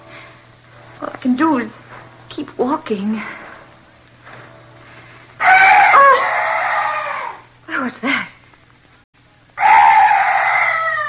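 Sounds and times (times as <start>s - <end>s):
speech: 1.0s - 1.8s, 2.4s - 3.4s
eerie night bird harsh screeching call: 5.4s - 7.5s, 9.6s - 11.0s.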